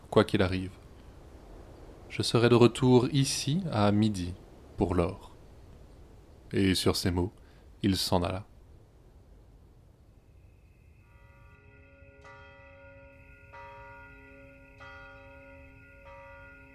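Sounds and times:
speech: 0:00.2 - 0:00.8, 0:02.1 - 0:05.3, 0:06.5 - 0:08.5
church bell tolling midnight in deserted town streets: 0:11.0 - 0:16.7.

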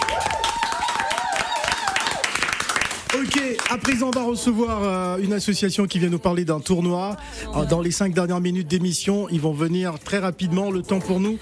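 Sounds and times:
audience applauding: 0:00.0 - 0:04.4
speech: 0:03.2 - 0:11.4.

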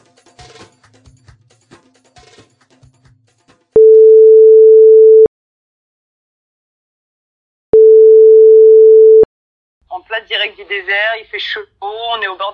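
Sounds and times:
telephone ringback tone: 0:03.8 - 0:05.3, 0:07.8 - 0:09.3
speech: 0:10.3 - 0:12.5.

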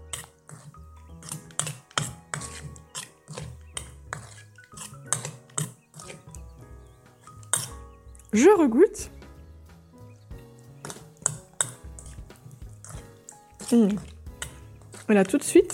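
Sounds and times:
spoon stirring salt and pepper into citrus vierge sauce in a bowl: 0:00.0 - 0:06.5, 0:07.1 - 0:08.3, 0:10.8 - 0:15.7
speech: 0:08.4 - 0:09.2, 0:13.7 - 0:14.1, 0:15.1 - 0:15.7.

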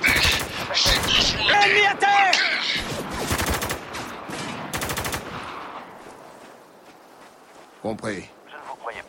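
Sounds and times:
rapid automatic gunfire in a war video game firefight: 0:00.1 - 0:01.5, 0:03.2 - 0:03.9, 0:04.7 - 0:05.3
speech: 0:01.7 - 0:02.2, 0:07.9 - 0:08.3.

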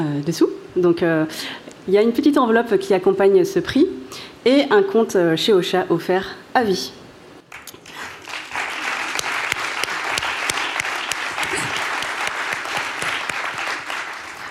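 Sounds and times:
speech: 0:00.0 - 0:07.0
audience applause at a prize presentation: 0:07.5 - 0:14.4
sharp individual claps: 0:07.5 - 0:14.4.

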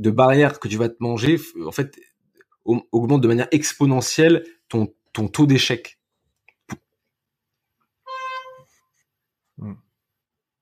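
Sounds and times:
speech: 0:00.0 - 0:06.0, 0:09.6 - 0:09.8
short car horn honk: 0:08.1 - 0:08.8.

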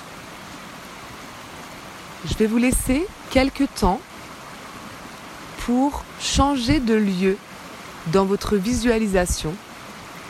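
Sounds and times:
flowing river water: 0:00.0 - 0:10.2
speech: 0:02.2 - 0:04.1, 0:05.6 - 0:09.7.

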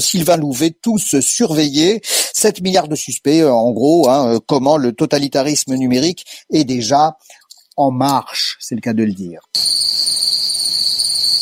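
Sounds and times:
speech: 0:00.0 - 0:11.4
dense chorus of crickets trilling at a high pitch: 0:09.6 - 0:11.4.

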